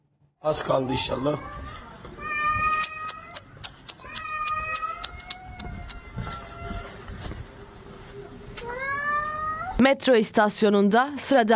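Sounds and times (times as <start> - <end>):
speech: 0.4 - 1.8, 9.8 - 11.5
cat in pain with paw caught in a metro station escalator meowing and wailing: 0.8 - 7.1, 8.6 - 9.8
sharp intermittent clicks: 2.8 - 6.0.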